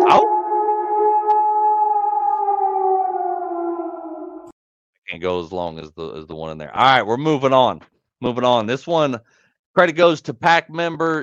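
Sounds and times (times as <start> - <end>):
human voices imitating a wolf pack howling: 0.0 - 4.5
speech: 5.2 - 11.2.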